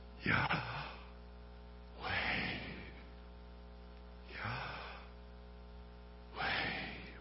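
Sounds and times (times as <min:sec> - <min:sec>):
speech: 0:00.2 - 0:00.8
slow breathing in and out: 0:02.0 - 0:03.2, 0:04.3 - 0:05.2, 0:06.4 - 0:07.1.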